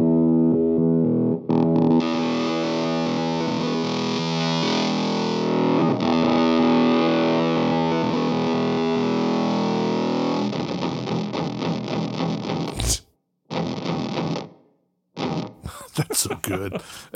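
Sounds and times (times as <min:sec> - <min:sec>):
heavily distorted electric guitar through a fuzz pedal: 0:00.0 - 0:14.6
laughter: 0:15.7 - 0:17.1
speech: 0:16.2 - 0:17.1.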